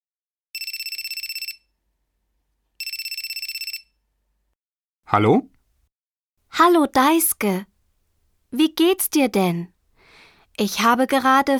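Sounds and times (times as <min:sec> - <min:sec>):
telephone ringing for an incoming call: 0:00.6 - 0:01.8, 0:02.8 - 0:04.0
speech: 0:05.1 - 0:05.5, 0:06.5 - 0:07.7, 0:08.5 - 0:09.7, 0:10.6 - 0:11.5.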